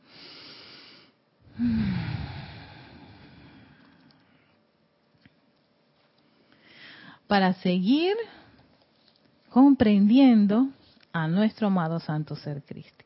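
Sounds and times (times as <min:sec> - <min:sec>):
deep breath in and out: 0:00.0 - 0:04.6, 0:06.5 - 0:07.2
speech: 0:01.6 - 0:02.1, 0:07.3 - 0:08.4, 0:09.5 - 0:13.0.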